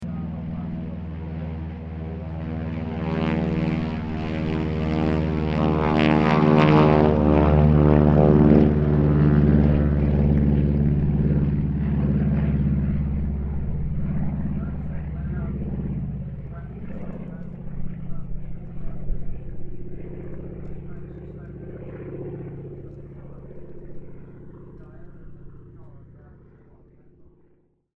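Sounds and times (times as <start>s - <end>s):
CAC CA-25 Winjeel aircraft taking off: 0.0s - 27.6s.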